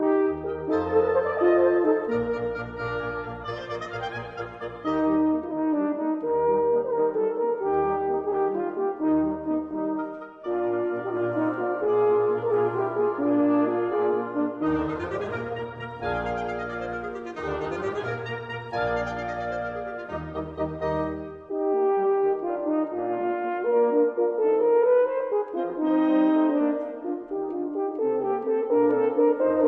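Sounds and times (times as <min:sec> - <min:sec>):
two horns playing a concerto: 0:00.0 - 0:29.6.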